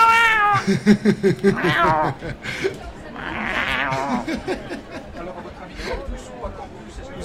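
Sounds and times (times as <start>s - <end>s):
cat meowing loudly with drawn-out wailing meows: 0.0s - 0.6s, 1.5s - 2.2s, 3.2s - 4.1s
laughter: 0.4s - 6.2s
speech: 0.7s - 2.8s, 4.3s - 6.4s.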